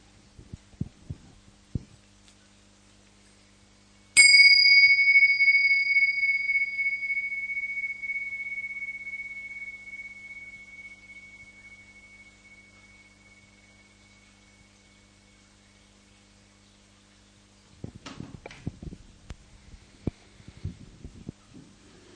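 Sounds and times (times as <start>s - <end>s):
single bell struck and ringing: 4.2s - 15.0s.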